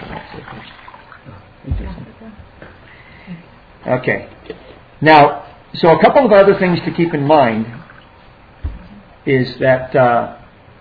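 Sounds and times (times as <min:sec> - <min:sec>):
water pouring into a cup: 0:00.0 - 0:01.4, 0:06.2 - 0:08.2
speech: 0:00.2 - 0:02.7, 0:03.3 - 0:07.8, 0:09.2 - 0:10.4
soft knock: 0:08.6 - 0:08.9.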